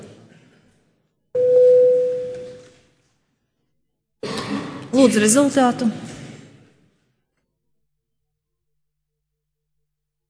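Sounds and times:
parliament voting bell electronic tone: 1.4 - 2.6
speech: 5.0 - 6.0.

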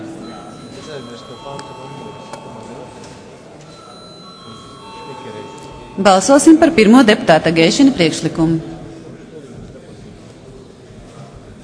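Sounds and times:
voting bell in the Latvian Saeima ringing before a vote: 0.0 - 8.4
faint hum of voices and movement: 0.0 - 11.6
speech: 0.9 - 2.6, 5.2 - 8.7.

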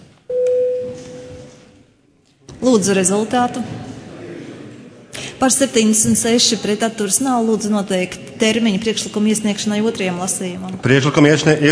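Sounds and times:
electronic tone signalling the start of a parliamentary vote: 0.3 - 1.6
speech: 2.6 - 3.9, 5.4 - 11.7.

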